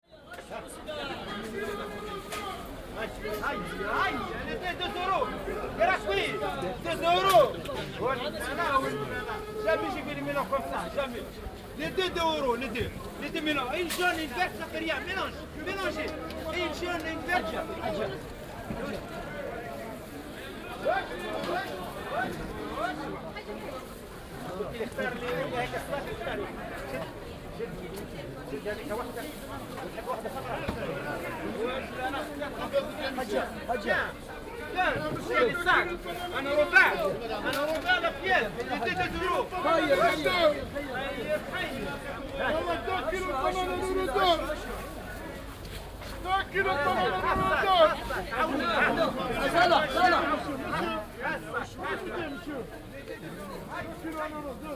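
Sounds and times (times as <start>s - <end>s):
market: 0.0s - 54.7s.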